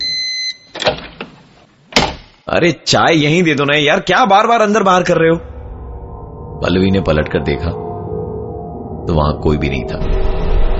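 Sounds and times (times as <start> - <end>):
door opening and closing: 0.7 - 2.3
speech: 2.5 - 5.5, 6.6 - 7.8, 9.0 - 10.4
brief steady high tone: 5.1 - 10.7.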